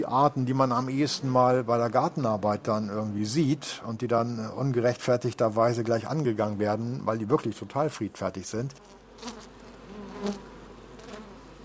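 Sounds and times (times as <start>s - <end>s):
speech: 0.0s - 9.5s, 10.2s - 10.5s
Saxon wasps buzzing at their nest: 8.7s - 11.6s.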